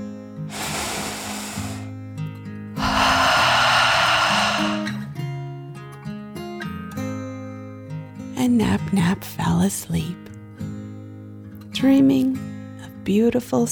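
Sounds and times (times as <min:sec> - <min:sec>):
deep breath in and out: 0:00.5 - 0:02.0, 0:02.8 - 0:05.1
speech: 0:08.5 - 0:10.3, 0:11.8 - 0:13.6.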